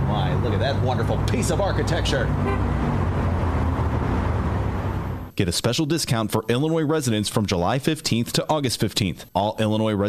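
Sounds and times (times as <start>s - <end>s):
dense traffic noise with engine rumble: 0.0s - 5.4s
speech: 0.4s - 3.3s, 5.4s - 10.0s
vehicle horn honking in traffic: 2.4s - 2.8s.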